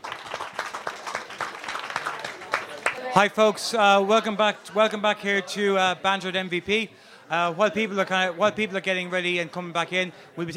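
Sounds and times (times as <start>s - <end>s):
audience applauding: 0.0s - 4.5s
speech: 3.2s - 10.5s.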